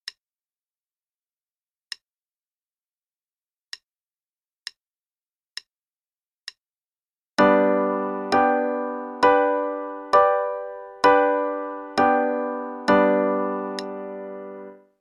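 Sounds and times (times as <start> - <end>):
chords in G major: 7.4 - 14.9.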